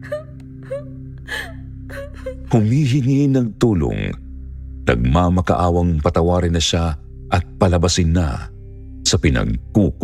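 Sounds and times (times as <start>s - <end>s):
child crying and wailing in sobbing bursts: 0.0s - 2.5s
speech: 2.5s - 4.2s, 4.9s - 10.0s.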